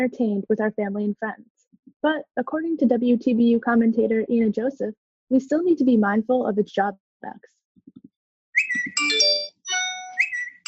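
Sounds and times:
speech: 0.0s - 7.6s
overlapping phone notification tones with chimes and pings: 8.8s - 10.6s.

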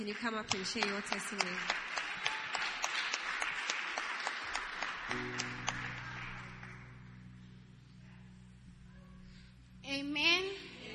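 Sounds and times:
speech: 0.0s - 2.0s
church audience clapping: 0.0s - 7.2s
low sustained organ-like tone: 4.6s - 10.9s.

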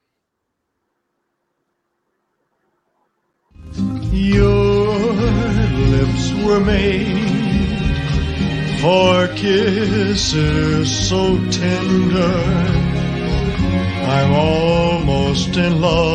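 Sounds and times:
recorded pop ballad with singer crooning over lush instrumental backing: 3.6s - 16.1s
speech: 6.4s - 7.4s, 8.8s - 12.8s, 14.0s - 16.1s.

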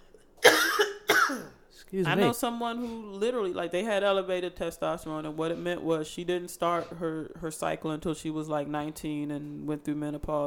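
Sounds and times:
person coughing forcefully: 0.4s - 1.6s
speech: 1.9s - 10.4s.

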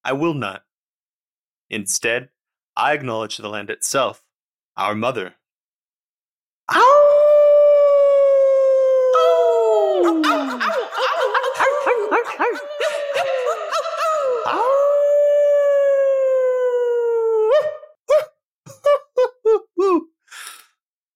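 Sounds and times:
speech: 0.0s - 0.7s, 1.7s - 4.2s, 4.8s - 5.4s, 6.7s - 7.2s
person imitating a coyote with yips and a wavering howl: 6.7s - 20.1s
laughter: 9.9s - 14.6s.

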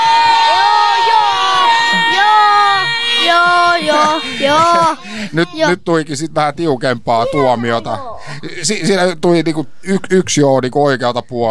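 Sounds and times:
laughter: 0.0s - 5.7s
group of children shouting together in a voice vote: 0.0s - 5.8s
speech: 5.3s - 11.4s.

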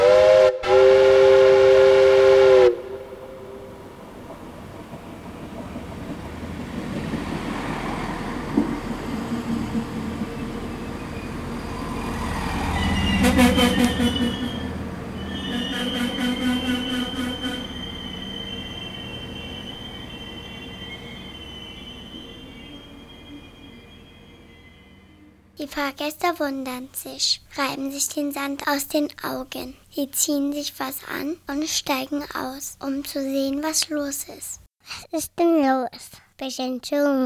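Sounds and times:
steam locomotive whistle on a sleeper train blowing: 0.0s - 4.2s, 10.7s - 25.6s
low rumble of train noise: 0.0s - 33.7s
speech: 25.7s - 37.2s.

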